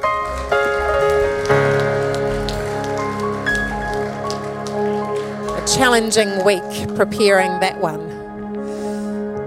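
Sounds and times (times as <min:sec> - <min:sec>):
audience applauding: 0:00.0 - 0:07.6
upbeat music with sustained chords: 0:00.0 - 0:09.4
speech: 0:05.7 - 0:08.1.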